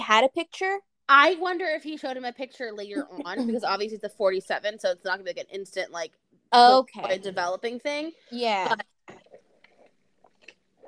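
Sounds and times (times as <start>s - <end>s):
speech: 0.1s - 8.9s
person sipping and swallowing water: 8.9s - 10.8s.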